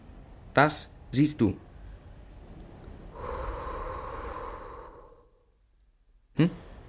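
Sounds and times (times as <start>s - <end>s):
speech: 0.6s - 1.7s
slow breathy exhale onto a mirror: 3.1s - 5.6s.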